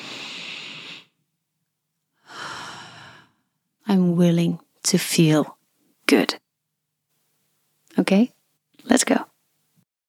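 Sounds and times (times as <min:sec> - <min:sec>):
deep breath: 0:00.0 - 0:01.2, 0:02.2 - 0:03.5
speech: 0:03.9 - 0:06.4, 0:08.0 - 0:09.3.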